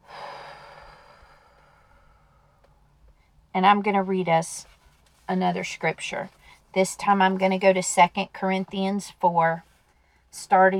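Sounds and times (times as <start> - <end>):
deep breath out: 0.0 - 2.6
speech: 3.6 - 4.7, 5.3 - 9.7, 10.3 - 10.7.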